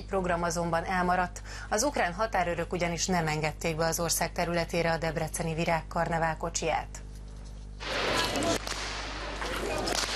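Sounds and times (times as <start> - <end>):
speech: 0.1 - 7.0
whip cracks during a parade of betyar outlaws: 7.8 - 10.1.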